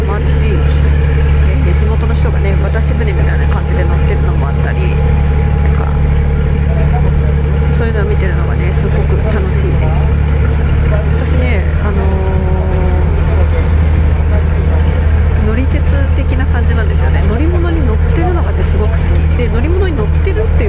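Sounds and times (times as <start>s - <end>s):
boat engine droning on a backwater canal: 0.0s - 20.6s
faint voices: 0.0s - 20.6s.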